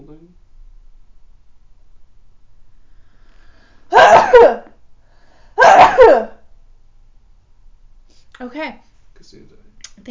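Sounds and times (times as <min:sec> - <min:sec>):
person sneezing: 0:03.9 - 0:04.7, 0:05.6 - 0:06.4
speech: 0:08.5 - 0:10.0.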